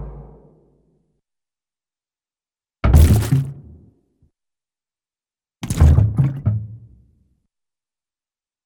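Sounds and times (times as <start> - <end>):
reverberant cartoon impact of object dropped in barrel: 2.9 - 3.8, 5.7 - 6.5.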